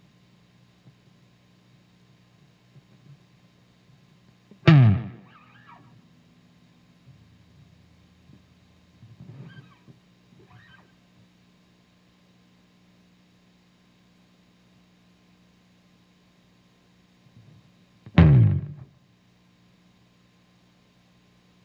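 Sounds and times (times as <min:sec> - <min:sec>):
bass slide: 0:04.7 - 0:05.3, 0:18.2 - 0:18.9.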